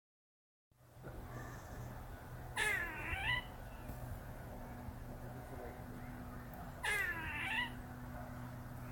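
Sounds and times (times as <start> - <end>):
steady low hum: 0.8 - 8.9
gray squirrel calling at a barred owl in a park: 2.5 - 3.9, 6.6 - 7.8.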